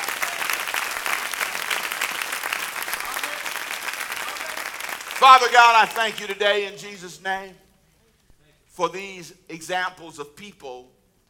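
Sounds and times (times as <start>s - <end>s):
audience clapping hands: 0.0s - 6.6s
speech: 5.2s - 7.6s, 8.8s - 11.0s.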